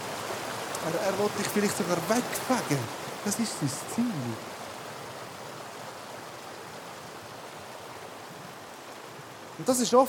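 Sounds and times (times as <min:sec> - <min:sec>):
rushing flood water sound effect: 0:00.0 - 0:10.0
speech: 0:00.8 - 0:04.6, 0:09.6 - 0:10.0.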